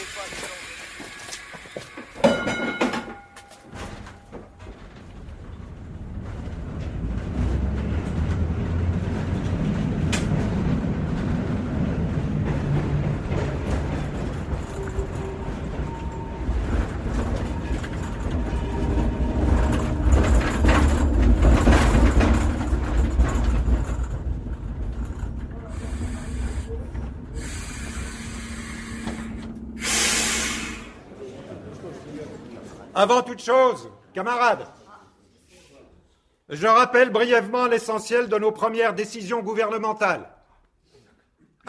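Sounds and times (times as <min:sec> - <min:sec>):
tram rumbling along its rails: 0:00.0 - 0:31.7
speech: 0:33.0 - 0:34.8, 0:36.5 - 0:40.3.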